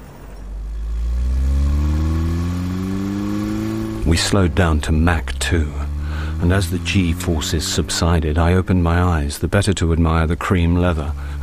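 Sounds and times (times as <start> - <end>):
car engine revving and accelerating: 0.0 - 11.4
speech: 4.1 - 11.4.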